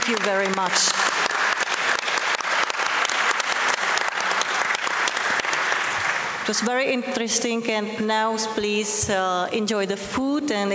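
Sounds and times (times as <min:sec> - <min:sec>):
audience round of applause: 0:00.0 - 0:06.7
speech: 0:00.1 - 0:01.2, 0:06.4 - 0:10.7.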